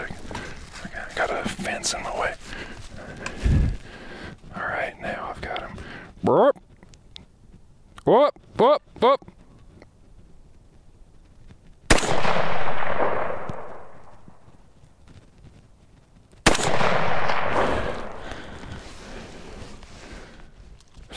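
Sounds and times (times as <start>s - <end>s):
speech: 1.2s - 2.7s, 6.2s - 6.6s, 8.1s - 9.3s
gunshots fired while hunting: 11.9s - 14.6s, 16.4s - 18.8s.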